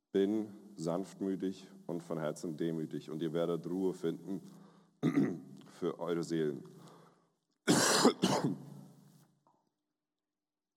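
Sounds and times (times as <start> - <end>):
speech: 0.1 - 6.8, 8.0 - 8.7
harsh person coughing with raspy throat sound: 5.0 - 5.4, 7.7 - 8.7.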